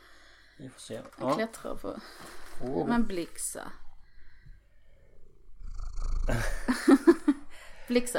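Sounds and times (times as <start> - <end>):
speech: 0.6 - 3.8, 6.3 - 7.0, 7.9 - 8.1
cat purring against the microphone: 5.1 - 7.1
laughter: 6.3 - 7.4.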